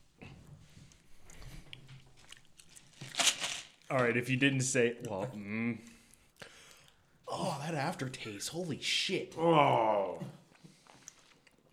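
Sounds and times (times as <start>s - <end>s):
wet chewing of a jelly bean: 0.6s - 3.9s, 5.0s - 7.1s, 10.5s - 11.7s
speech: 3.9s - 5.9s, 7.7s - 10.4s.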